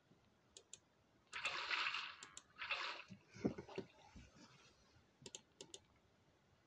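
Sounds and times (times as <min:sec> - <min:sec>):
video game water splashing: 0:01.3 - 0:04.0.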